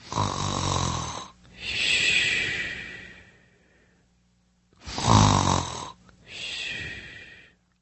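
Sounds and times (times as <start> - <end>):
person snoring: 0.0 - 3.4, 4.8 - 7.6.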